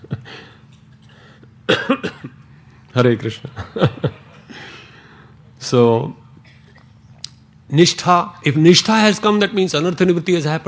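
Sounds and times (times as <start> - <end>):
person coughing: 1.7 - 2.4, 6.4 - 6.8
speech: 1.7 - 2.4, 3.0 - 4.2, 5.7 - 6.2, 7.7 - 10.6.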